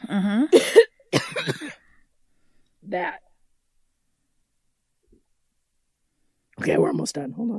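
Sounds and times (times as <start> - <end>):
speech: 0.1 - 0.8, 6.6 - 7.5
person having a coughing fit: 0.5 - 1.9.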